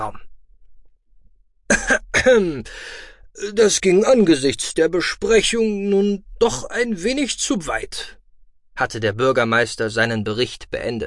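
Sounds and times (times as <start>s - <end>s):
speech: 0.0s - 0.2s, 2.2s - 8.2s, 8.8s - 11.0s
man with a dry scratchy throat clearing his throat: 1.7s - 2.7s
man with a dry scratchy throat coughing: 1.7s - 3.0s.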